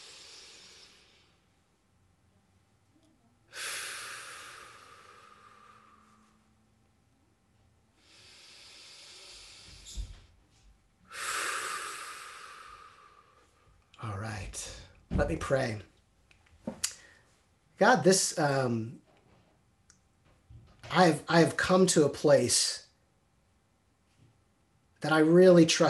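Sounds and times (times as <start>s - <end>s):
people breathing deeply together during a church service: 0.0s - 1.6s, 3.5s - 6.6s, 8.0s - 13.8s
speech: 14.6s - 15.9s, 17.8s - 19.0s, 20.9s - 22.8s, 25.0s - 25.8s.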